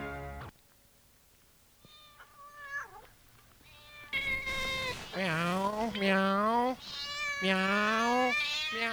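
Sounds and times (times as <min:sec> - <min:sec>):
several cats meowing and caterwauling: 0:01.8 - 0:08.9.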